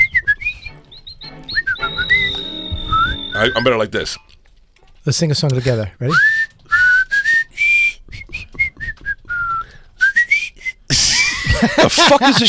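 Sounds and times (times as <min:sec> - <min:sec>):
person whistling a lively tune: 0:00.0 - 0:03.7, 0:06.1 - 0:10.9
speech: 0:03.4 - 0:04.4, 0:05.0 - 0:06.5, 0:11.6 - 0:12.4
laughter: 0:10.9 - 0:12.4.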